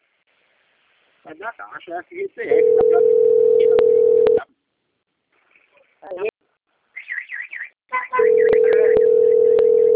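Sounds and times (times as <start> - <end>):
speech: 1.2 - 3.8, 6.1 - 6.3
telephone ringing tone on an outgoing call: 2.5 - 4.4, 8.2 - 9.9.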